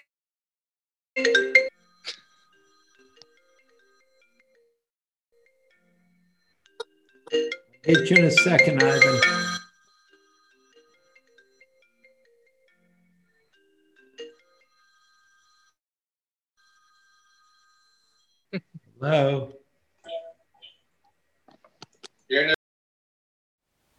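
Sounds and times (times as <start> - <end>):
phone ringtone ringing: 1.2 - 4.8, 5.4 - 15.8, 16.6 - 18.5
speech: 7.8 - 9.4, 19.0 - 19.5.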